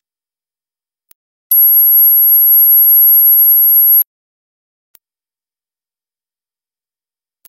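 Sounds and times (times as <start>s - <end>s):
mosquito killer zapping: 1.5s - 4.0s.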